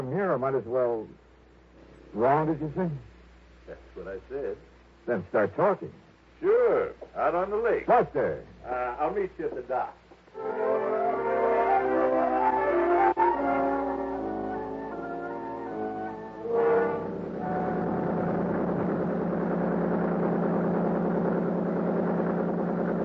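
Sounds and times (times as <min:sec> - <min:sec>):
speech: 0:00.0 - 0:01.2, 0:02.1 - 0:03.1, 0:03.7 - 0:11.0
outboard motorboat engine running on a lake: 0:10.4 - 0:23.0.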